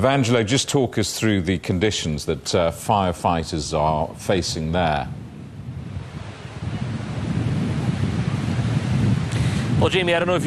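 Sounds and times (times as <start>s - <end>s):
speech: 0.0s - 5.2s, 9.8s - 10.4s
strong wind buffeting the microphone: 0.0s - 10.4s
rough high sea surf crashing: 4.0s - 10.4s.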